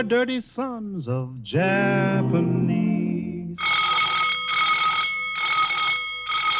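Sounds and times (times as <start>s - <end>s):
speech: 0.0s - 2.8s
alarm bell ringing aboard a ship during an attack: 3.6s - 6.5s.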